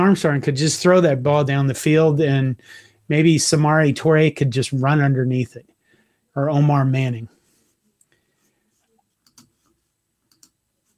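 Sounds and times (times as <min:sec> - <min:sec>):
speech: 0:00.0 - 0:05.7, 0:06.4 - 0:07.4
computer mouse clicking: 0:08.9 - 0:10.6.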